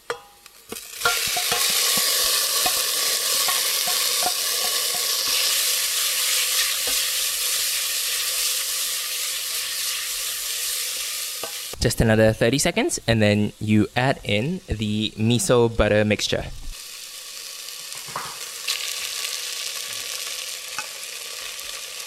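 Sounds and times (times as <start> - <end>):
sautéed mushrooms sizzling in a pan on medium heat: 0.0 - 22.0
utensil stirring against a pan: 0.1 - 11.8
speech: 11.8 - 16.6.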